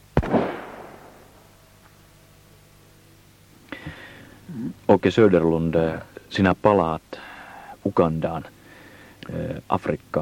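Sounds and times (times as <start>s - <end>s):
firing squad gunshots: 0.2s - 1.4s
speech: 4.6s - 7.2s, 7.9s - 8.6s, 9.3s - 10.2s.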